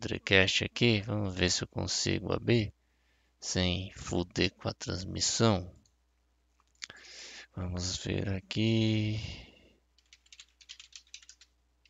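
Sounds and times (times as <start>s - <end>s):
speech: 0.0s - 2.8s, 3.4s - 5.8s, 7.6s - 9.5s
typing on a computer keyboard: 10.0s - 11.8s.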